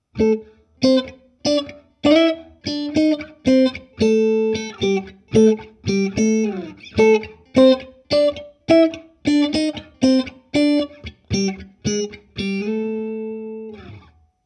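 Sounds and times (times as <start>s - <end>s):
expressive blues guitar playing: 0.0s - 14.4s.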